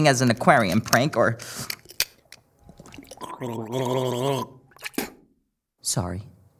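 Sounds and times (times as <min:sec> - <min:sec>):
speech: 0:00.0 - 0:01.8, 0:03.4 - 0:05.1, 0:05.8 - 0:06.3
loud gargling of mouthwash: 0:02.6 - 0:05.2.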